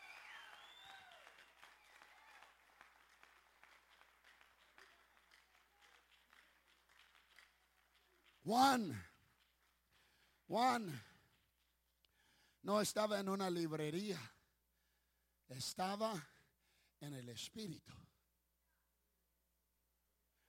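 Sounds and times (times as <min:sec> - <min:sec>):
crowd cheers and whoops: 0:00.0 - 0:02.7
crowd applauding: 0:00.0 - 0:11.6
speech: 0:08.4 - 0:09.1, 0:10.5 - 0:11.1, 0:12.6 - 0:14.4, 0:15.5 - 0:16.3, 0:17.0 - 0:18.0.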